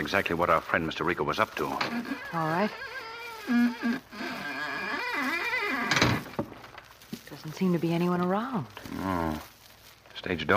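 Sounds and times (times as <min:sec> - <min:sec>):
speech: 0:00.0 - 0:04.4, 0:07.4 - 0:09.5, 0:10.2 - 0:10.5
theater stage door hinges creaking open: 0:01.5 - 0:06.8
short wooden thump of theater stage door swinging wide: 0:05.9 - 0:06.6.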